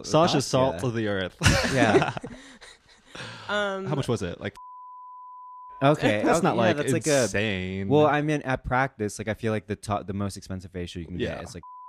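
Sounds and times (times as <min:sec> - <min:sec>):
laughter: 0:00.0 - 0:02.5, 0:06.1 - 0:07.4
speech: 0:00.0 - 0:04.7, 0:05.8 - 0:11.8
steady censor bleep tone: 0:04.6 - 0:05.9.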